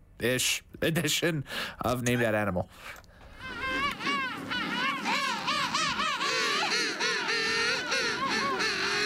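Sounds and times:
speech: 0.2 - 3.0
dense chorus of birds calling with harsh honking cries: 3.4 - 9.0.

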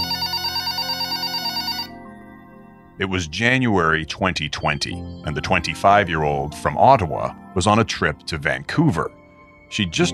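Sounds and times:
hotel-room telephone ringing with an electronic trill: 0.0 - 2.1
speech: 3.0 - 10.1.

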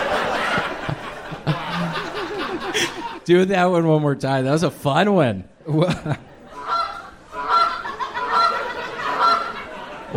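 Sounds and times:
laughter: 0.0 - 3.3, 5.7 - 10.1
speech: 3.3 - 6.3
goose honking: 6.6 - 9.6.

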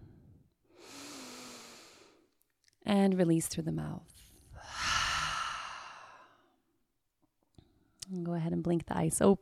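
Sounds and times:
deep breath in during a guided breathing exercise: 0.0 - 2.2, 4.5 - 6.6
speech: 2.9 - 4.3, 8.3 - 9.3.

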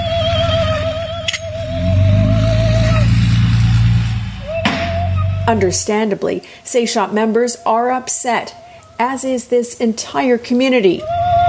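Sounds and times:
heavy truck engine revving on a residential property: 0.0 - 6.0
sharp knock: 4.6 - 5.2
speech: 5.5 - 11.3.

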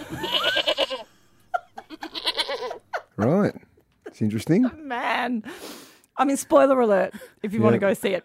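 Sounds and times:
goat bleating: 0.1 - 1.1, 1.9 - 2.8
speech: 3.2 - 3.6, 4.2 - 8.2.

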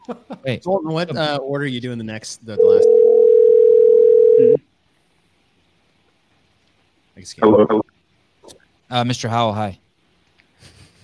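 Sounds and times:
speech: 0.0 - 3.1, 7.2 - 7.8, 8.9 - 9.8
phone ringback tone: 2.6 - 4.6.

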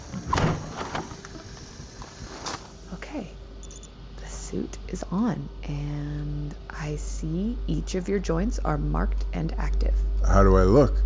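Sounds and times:
window being cracked open: 0.0 - 2.8
steady hiss: 0.0 - 5.6
speech: 3.1 - 3.4, 4.5 - 11.0.

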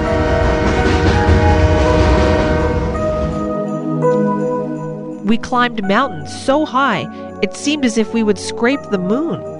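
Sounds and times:
sustained horn-like tones: 0.0 - 4.2
train rumbling along tracks through cold dark forests: 0.0 - 6.0
speech: 5.3 - 9.5.

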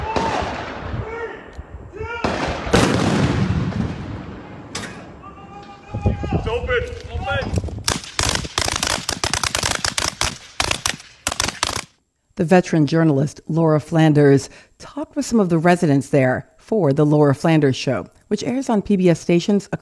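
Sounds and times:
explosions and rapid volley of sharp blasts: 0.0 - 5.2, 7.8 - 11.9
heavy booms of artillery fire: 0.0 - 5.2, 7.7 - 11.9
indistinct voices: 4.8 - 7.5
speech: 6.5 - 7.6, 12.4 - 19.8.

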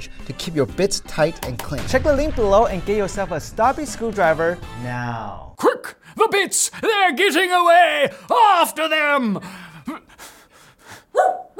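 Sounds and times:
speech: 0.0 - 10.3
breathy panting-like huffs: 9.4 - 11.2
dogs barking: 11.1 - 11.5.

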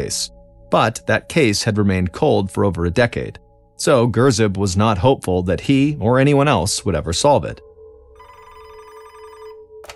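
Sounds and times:
speech: 0.0 - 7.7
desk telephone ringing with trilling electronic tone: 8.2 - 9.8.

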